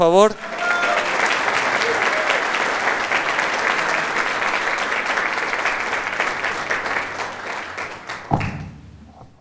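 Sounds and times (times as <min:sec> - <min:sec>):
speech: 0:00.0 - 0:00.5
large audience applauding a speaker: 0:00.3 - 0:08.7
laughter: 0:00.4 - 0:08.3
thump: 0:08.3 - 0:09.3.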